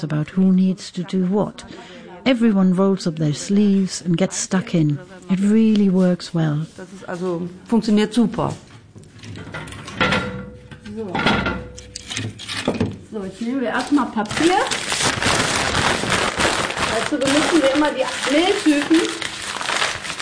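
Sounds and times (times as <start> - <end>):
speech: 0.0 - 8.7, 11.0 - 11.5, 13.2 - 14.9, 17.0 - 19.2
paper crumpling for a fire: 13.8 - 20.2
cardboard tearing for a fire: 14.3 - 20.2.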